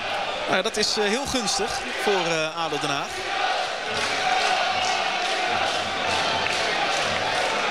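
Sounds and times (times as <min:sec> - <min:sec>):
large stadium crowd murmuring and stirring: 0:00.0 - 0:07.6
speech: 0:00.5 - 0:04.3.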